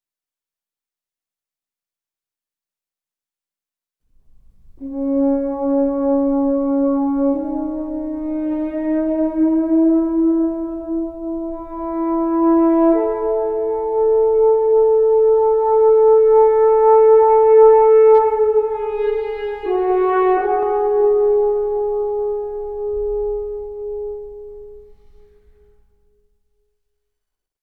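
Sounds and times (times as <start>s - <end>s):
solo horn playing: 4.5s - 25.8s.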